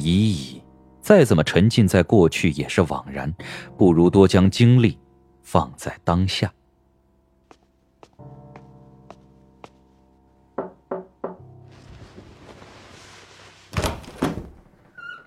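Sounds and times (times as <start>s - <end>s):
speech: 0.0s - 6.6s
knocking on a door: 10.6s - 11.4s
louder thud and rustle: 11.7s - 14.8s.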